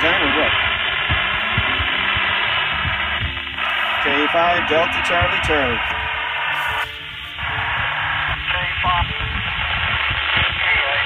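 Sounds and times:
faint low pulsing: 0.0s - 10.4s
band-limited radio static hissing and crackling: 0.0s - 11.0s
speech: 4.4s - 6.0s.

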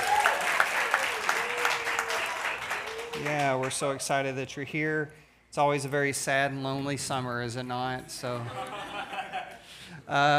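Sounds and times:
audience applause for students: 0.0s - 4.0s
speech: 3.2s - 8.9s, 10.1s - 10.3s
laughter: 8.3s - 9.8s.

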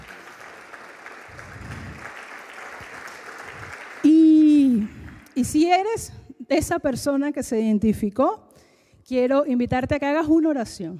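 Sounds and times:
audience applauding: 0.0s - 5.4s
speech: 5.4s - 8.4s, 9.1s - 10.9s.

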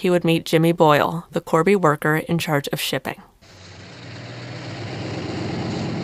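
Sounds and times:
speech: 0.0s - 3.3s
heavy truck engine idling: 3.4s - 6.0s.

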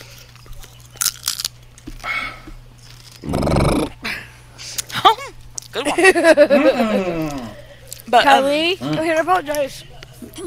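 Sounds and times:
person biting into and chewing crunchy pub snack bites: 0.0s - 4.0s
laughter: 5.8s - 7.9s
speech: 5.9s - 7.2s, 8.1s - 10.4s.

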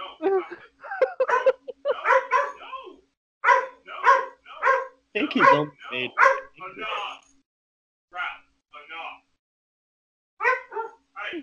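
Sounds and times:
laughter: 0.0s - 2.4s
dog barking and yipping: 1.1s - 6.5s, 10.4s - 11.0s
speech: 5.2s - 7.3s.

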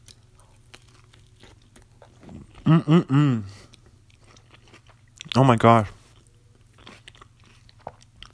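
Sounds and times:
chewing frozen pizza topped with coleslaw and hot sauce: 0.0s - 2.7s, 3.5s - 5.4s, 6.0s - 8.3s
eater humming appreciatively: 2.6s - 3.6s
speech: 2.7s - 3.6s, 5.4s - 6.0s.

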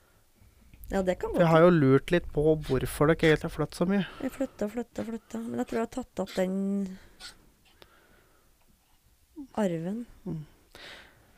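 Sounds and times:
speech: 0.9s - 7.4s, 9.5s - 11.0s
puppy coughing: 5.0s - 6.5s.

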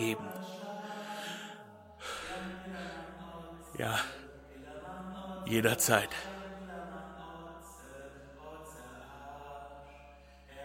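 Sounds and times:
speech: 0.0s - 0.4s, 3.8s - 4.2s, 5.5s - 6.3s
steady tonal hum: 0.0s - 10.6s
man breathing heavily: 0.8s - 3.2s.

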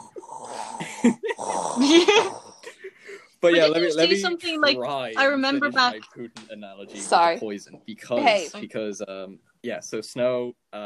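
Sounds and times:
voice imitating heavy respirator breathing: 0.0s - 3.1s
laughter: 0.8s - 6.0s, 8.0s - 10.5s
speech: 1.0s - 2.4s, 3.4s - 10.8s.

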